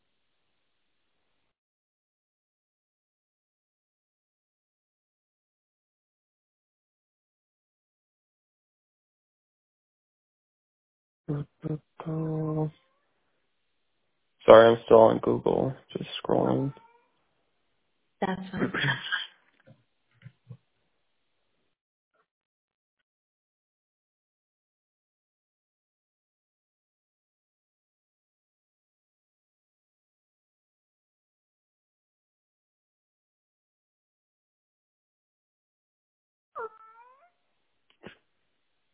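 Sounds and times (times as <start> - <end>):
speech: 11.3 - 12.8, 14.5 - 16.8, 18.2 - 19.2
indoor cat meowing loudly at a window: 36.6 - 37.3.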